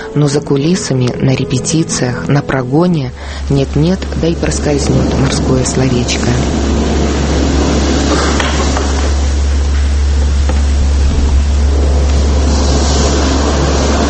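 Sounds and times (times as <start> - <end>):
speech: 0.2 - 6.7
loud sea waves with a deep rumbling undertone: 3.2 - 14.0.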